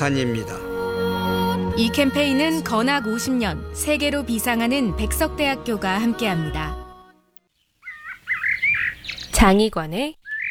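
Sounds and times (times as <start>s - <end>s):
speech: 0.0s - 0.7s, 1.8s - 6.7s, 9.4s - 10.2s
black-naped oriole singing on Udo island off Goheung South Korea: 7.8s - 9.6s, 10.2s - 10.5s.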